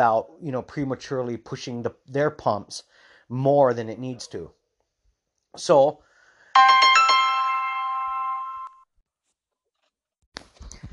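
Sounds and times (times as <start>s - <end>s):
speech: 0.0s - 4.6s, 5.5s - 6.9s
phone ringtone: 6.6s - 8.8s.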